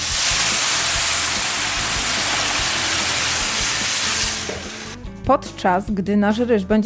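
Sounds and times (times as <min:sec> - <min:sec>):
steam rushing: 0:00.0 - 0:05.0
vegetable broth poured onto toasted rice sizzling in a frying pan: 0:00.0 - 0:05.0
speech: 0:05.3 - 0:06.8.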